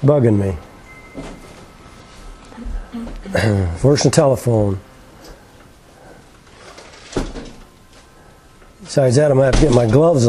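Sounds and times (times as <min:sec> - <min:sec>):
speech: 0:00.0 - 0:00.7, 0:03.2 - 0:04.9, 0:08.9 - 0:10.2
quiet hum: 0:00.0 - 0:10.2
door being pushed shut: 0:01.0 - 0:01.8, 0:07.0 - 0:07.8.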